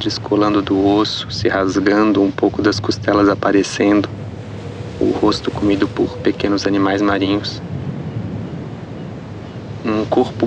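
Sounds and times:
speech: 0.0 - 4.2, 5.0 - 7.7, 9.8 - 10.4
surf rushing on an empty beach in winter: 0.0 - 10.4
wind roaring on an empty beach in winter: 0.0 - 10.4.

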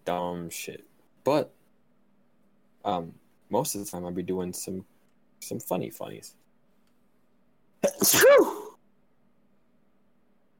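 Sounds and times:
speech: 0.1 - 1.6, 2.8 - 6.4, 7.9 - 8.6
loud sneeze: 7.8 - 8.8.

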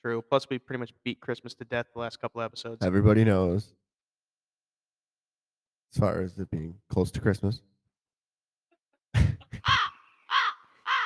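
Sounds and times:
speech: 0.0 - 3.8, 5.9 - 7.7
crows cawing harshly: 9.6 - 11.0.

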